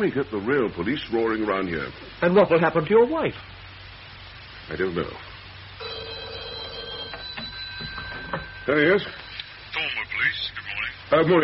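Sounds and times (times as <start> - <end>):
speech: 0.0 - 3.6, 4.7 - 5.3, 8.7 - 9.2, 10.4 - 11.4
telephone ringing at a police station: 5.8 - 10.8.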